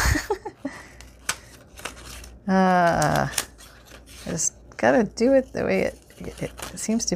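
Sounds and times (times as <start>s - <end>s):
scissors snipping through paper: 1.0s - 4.5s, 5.2s - 7.1s
speech: 2.5s - 3.5s, 4.3s - 7.1s.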